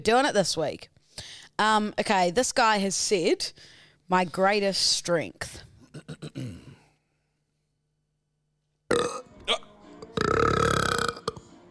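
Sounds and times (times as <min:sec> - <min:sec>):
speech: 0:00.0 - 0:01.0, 0:01.6 - 0:05.7
person burping deliberately: 0:05.9 - 0:06.8, 0:08.9 - 0:11.6.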